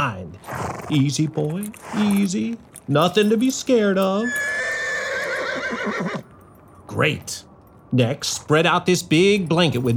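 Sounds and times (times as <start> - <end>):
speech: 0.0 - 4.4, 6.9 - 9.9
horse whinnying: 4.2 - 6.3.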